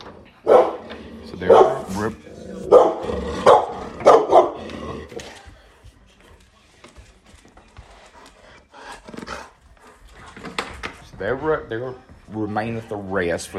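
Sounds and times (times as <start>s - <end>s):
dog at home barking at the mailman: 0.4s - 0.8s, 1.4s - 4.6s
speech: 1.4s - 2.3s, 11.7s - 13.5s.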